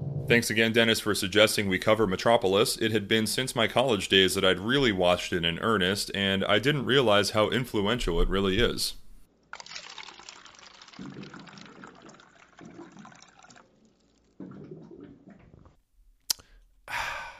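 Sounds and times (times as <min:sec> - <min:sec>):
speech: 0:00.3 - 0:09.0
water glugging and gurgling from a water cooler jug: 0:09.6 - 0:15.8.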